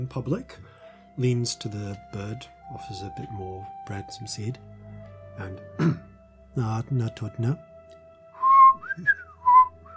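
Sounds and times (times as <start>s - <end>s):
speech: 0.0s - 4.8s, 5.4s - 7.7s, 9.0s - 9.2s
person whistling to a bird: 8.4s - 9.9s.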